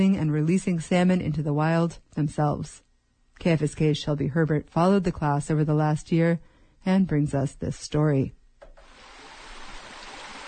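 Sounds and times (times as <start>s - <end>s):
speech: 0.0s - 2.8s, 3.4s - 8.4s
pond water gurgling through two enormous fish tanks at a water treatment facility in Petersburg: 8.8s - 10.4s.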